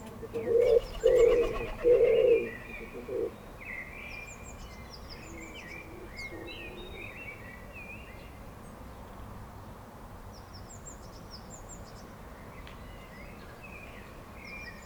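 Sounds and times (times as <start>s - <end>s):
low cooing calls of birds at a feeder: 0.0s - 3.5s, 5.2s - 7.2s
steady low outdoor hiss and rumble: 0.0s - 14.8s.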